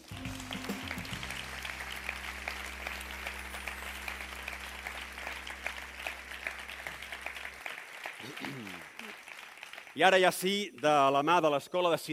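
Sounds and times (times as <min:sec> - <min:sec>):
low musical drone: 0:00.0 - 0:07.6
audience applause from a large crowd: 0:00.0 - 0:10.6
speech: 0:10.0 - 0:12.1.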